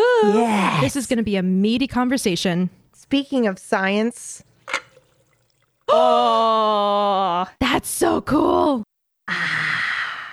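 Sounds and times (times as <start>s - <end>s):
speech: 0.2s - 4.5s, 5.9s - 9.7s
iced tea poured into a glass: 4.4s - 5.9s.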